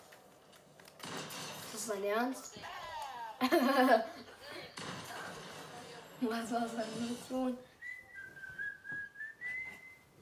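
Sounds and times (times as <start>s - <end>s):
faint noise: 0.0s - 10.2s
speech: 1.8s - 2.8s, 3.4s - 4.9s, 6.2s - 7.7s
laughter: 2.9s - 4.6s
steady sustained whistled tone: 7.7s - 10.2s.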